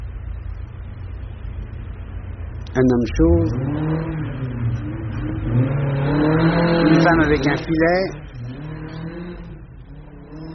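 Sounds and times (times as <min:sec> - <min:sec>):
rally car engine revving with a throaty growl: 0:02.3 - 0:10.5
speech: 0:02.8 - 0:04.2, 0:07.0 - 0:08.3.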